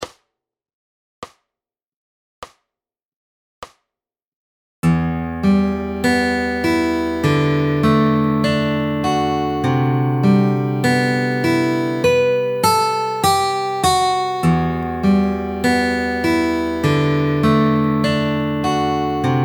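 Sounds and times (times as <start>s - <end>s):
fingerstyle guitar lick: 4.8s - 19.4s.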